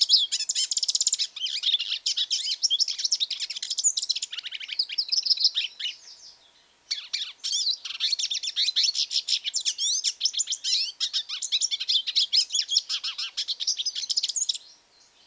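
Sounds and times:
hooded siskin twittering song: 0.0 - 15.2.

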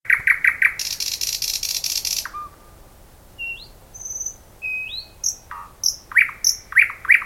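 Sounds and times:
thrush nightingale song: 0.1 - 7.2.

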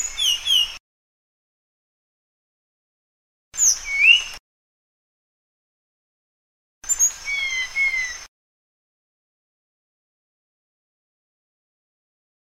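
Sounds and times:
Sunda blue flycatcher song of twittering whistles and descending slurs: 0.0 - 0.8, 3.6 - 4.4, 6.8 - 8.3.

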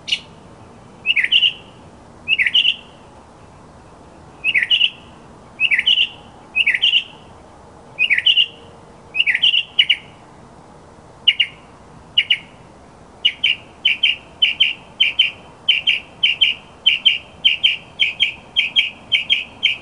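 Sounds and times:
Northern mockingbird singing paired slurred whistled notes: 1.0 - 1.7, 2.3 - 2.9, 4.4 - 5.0, 5.6 - 7.2, 8.0 - 8.6, 9.2 - 10.1, 11.3 - 11.6, 12.2 - 12.5, 13.2 - 19.8.

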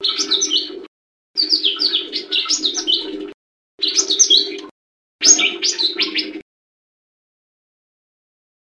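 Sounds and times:
leafbird singing warbled, chattering notes: 0.0 - 6.4.

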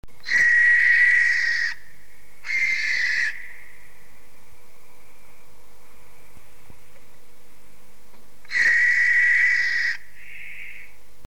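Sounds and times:
Tyto novaehollandiae calling: 0.2 - 4.2, 8.4 - 11.0.

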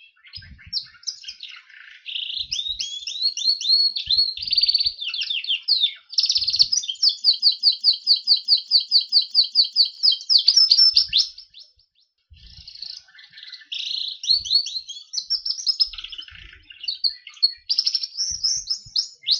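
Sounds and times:
Berner canary song: 0.0 - 19.3.

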